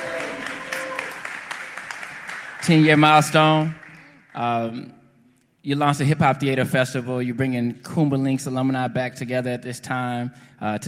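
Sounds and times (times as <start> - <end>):
audience applause at a hip-hop theater festival event: 0.0 - 4.5
speech: 2.6 - 3.8, 4.4 - 5.0, 5.6 - 10.8.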